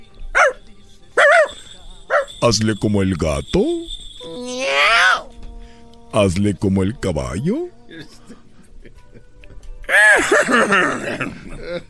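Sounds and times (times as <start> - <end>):
speech: 2.4 - 3.8, 6.1 - 8.3, 10.0 - 11.8
child's voice imitating a dog barking: 4.4 - 5.3
laughter: 7.9 - 11.8.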